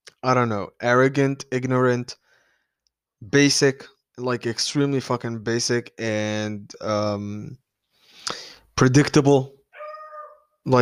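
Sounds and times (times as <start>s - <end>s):
speech: 0.2s - 2.2s, 3.2s - 7.6s, 8.3s - 9.6s
dog barking: 9.8s - 10.4s.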